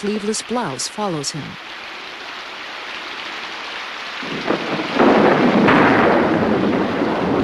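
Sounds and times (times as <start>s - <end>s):
speech: 0.0s - 1.9s, 4.2s - 4.6s
heavy rain pouring outdoors by a path: 0.0s - 7.4s
deep rumble of thunder: 4.2s - 7.4s.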